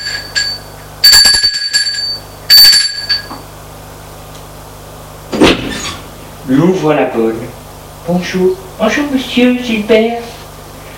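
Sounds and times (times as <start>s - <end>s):
doorbell ringing: 0.0s - 3.4s
speech: 6.5s - 10.3s.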